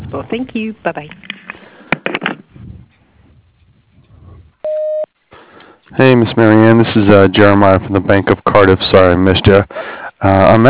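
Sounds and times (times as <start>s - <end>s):
speech: 0.1s - 1.3s, 6.0s - 10.6s
answering machine message tone beep: 4.6s - 5.1s.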